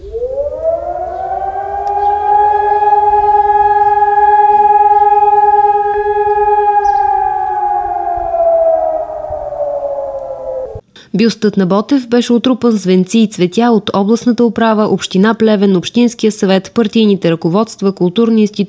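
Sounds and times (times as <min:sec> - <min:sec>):
civil defense siren wailing: 0:00.0 - 0:10.8
speech: 0:11.2 - 0:18.6.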